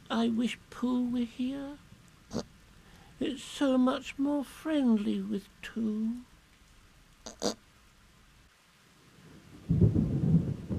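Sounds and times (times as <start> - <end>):
soft wash of rain: 0.0 - 10.7
speech: 0.1 - 2.5, 3.2 - 6.3, 7.3 - 7.6
brief sharp crackle: 1.8 - 3.2, 5.4 - 9.4
deep rumble of thunder: 9.4 - 10.7.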